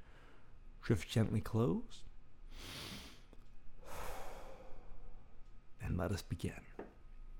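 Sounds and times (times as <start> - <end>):
speech: 0.9 - 2.8, 5.9 - 6.8
slow breathing during a guided relaxation exercise: 2.5 - 5.4.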